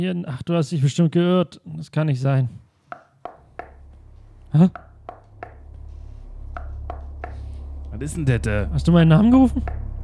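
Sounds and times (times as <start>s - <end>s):
speech: 0.0s - 2.6s, 4.5s - 4.8s, 8.0s - 9.8s
sharp knocks on a door: 3.3s - 3.8s, 4.7s - 5.6s, 6.6s - 7.4s
low hum: 3.4s - 10.0s.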